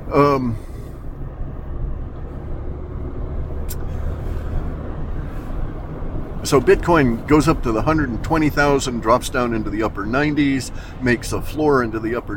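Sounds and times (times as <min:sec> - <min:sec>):
car engine and road rumble in traffic: 0:00.0 - 0:12.3
speech: 0:00.1 - 0:00.7, 0:06.5 - 0:12.3
sharp click: 0:03.6 - 0:03.9.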